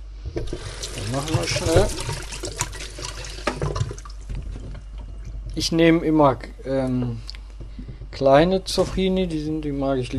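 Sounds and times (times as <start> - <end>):
running water from a tap while vegetables are rinsed: 0.3 - 5.5
speech: 0.4 - 2.6, 5.6 - 7.3, 8.2 - 10.1.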